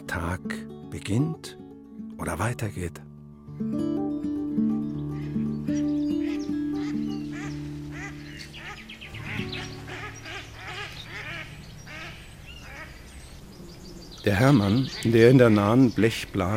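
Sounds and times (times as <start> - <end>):
speech: 0.1 - 1.6, 2.2 - 4.3, 5.7 - 6.0, 14.2 - 16.5
high bird calls: 4.6 - 16.5
flock of ducks quacking: 5.0 - 13.2, 14.4 - 15.8.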